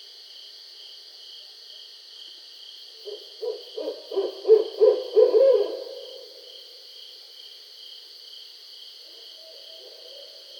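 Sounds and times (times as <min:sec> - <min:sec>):
barred owl giving low hoots: 0:03.0 - 0:06.3.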